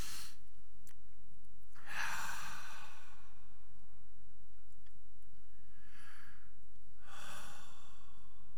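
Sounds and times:
deep breaths drawn in during a group prayer: 0.0s - 0.4s, 1.8s - 3.8s, 5.5s - 8.5s.

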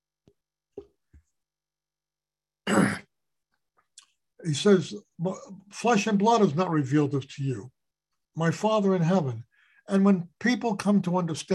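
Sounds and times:
person sneezing: 2.7s - 3.1s
speech: 4.4s - 7.8s, 8.4s - 11.5s.

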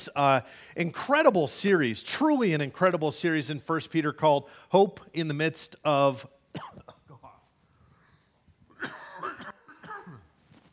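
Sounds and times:
speech: 0.0s - 6.9s
man coughing: 6.6s - 7.4s, 8.7s - 10.4s.

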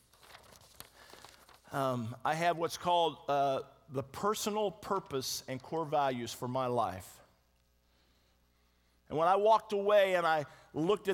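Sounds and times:
sheet of paper rustling and crinkling: 0.0s - 1.8s
speech: 1.7s - 7.2s, 9.1s - 11.1s.

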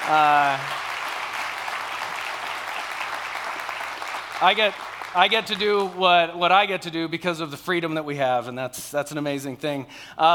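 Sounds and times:
crowd clapping: 0.0s - 6.4s
speech: 0.1s - 0.8s, 4.4s - 10.3s.

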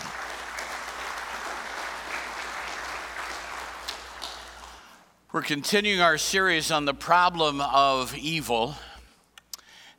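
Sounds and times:
audience clapping during a morning service: 0.0s - 5.0s
speech: 5.3s - 8.9s.

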